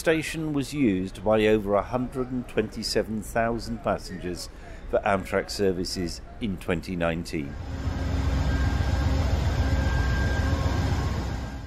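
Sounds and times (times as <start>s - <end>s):
speech: 0.0s - 8.1s
passenger train interior rumble at station stop: 7.5s - 11.6s.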